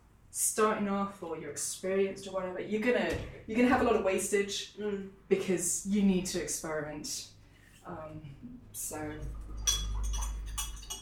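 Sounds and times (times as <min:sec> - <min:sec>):
speech: 0:00.4 - 0:09.8
glasses clinking together: 0:09.5 - 0:11.0.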